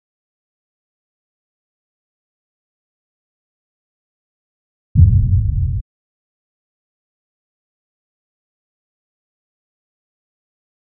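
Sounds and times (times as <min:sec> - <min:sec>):
booms: 0:05.0 - 0:05.8.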